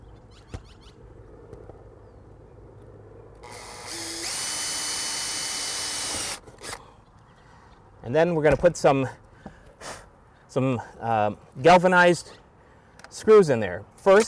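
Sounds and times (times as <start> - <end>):
noise: 0.0 - 14.2
power drill boring starter holes into a roof: 3.4 - 6.8
speech: 8.1 - 9.2, 10.6 - 12.4, 13.2 - 14.2.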